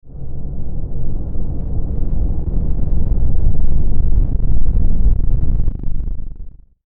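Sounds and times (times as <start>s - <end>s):
static distortion hum: 0.2s - 6.7s.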